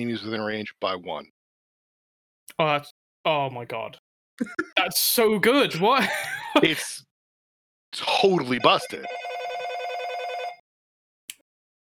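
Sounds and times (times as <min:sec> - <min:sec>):
speech: 0:00.0 - 0:01.4, 0:02.5 - 0:07.1, 0:07.9 - 0:09.3
laughter: 0:04.4 - 0:07.0
telephone ringing: 0:08.4 - 0:10.6.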